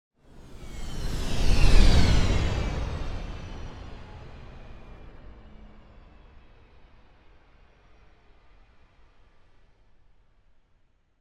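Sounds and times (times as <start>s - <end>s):
spaceship passing by and slowing down: 0.4s - 5.7s.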